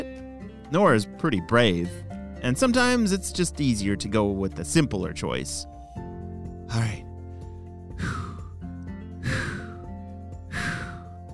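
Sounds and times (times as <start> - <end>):
speech: 0.7 - 5.7, 6.7 - 7.0
deep breathy inhales: 7.2 - 11.3.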